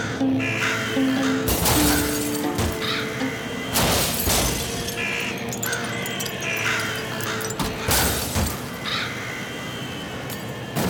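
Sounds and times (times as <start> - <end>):
dense swarm of crows cawing: 0.0 - 10.7
glass shattering: 1.5 - 2.8, 3.8 - 8.7.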